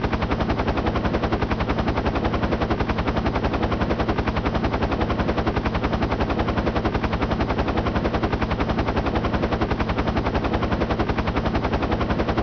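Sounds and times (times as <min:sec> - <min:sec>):
helicopter: 0:00.0 - 0:12.4.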